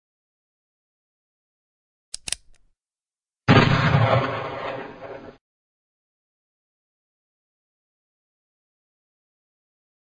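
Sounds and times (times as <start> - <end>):
44 magnum gunshot: 3.5 - 5.4.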